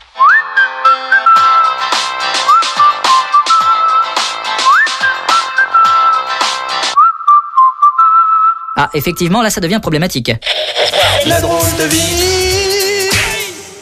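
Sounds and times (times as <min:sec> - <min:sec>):
high-pitched whistling tone from ringing ears heard through a telephone: 0:00.2 - 0:06.4, 0:07.0 - 0:09.3
speech: 0:08.8 - 0:12.4.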